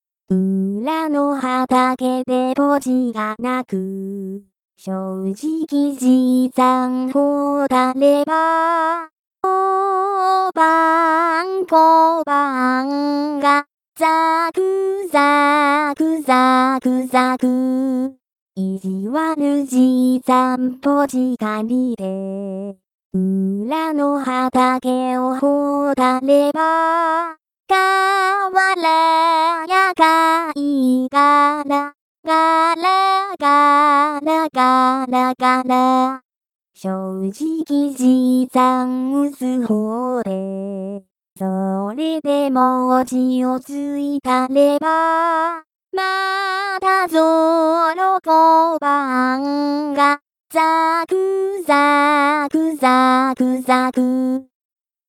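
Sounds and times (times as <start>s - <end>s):
person singing solo vocal: 0.3s - 36.2s, 36.8s - 54.5s.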